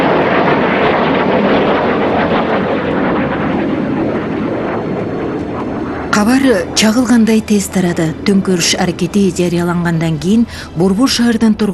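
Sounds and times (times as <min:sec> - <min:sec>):
F-16 fighter jets flying low over a city: 0:00.0 - 0:11.7
speech: 0:06.2 - 0:11.7.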